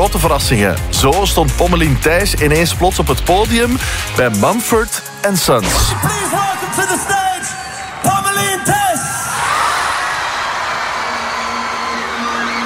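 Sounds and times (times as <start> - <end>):
speech: 0.1 - 7.2
large music festival crowd screaming and cheering wildly: 5.6 - 12.6
dense sustained roar of applause and cheering: 5.8 - 8.8, 9.4 - 12.6.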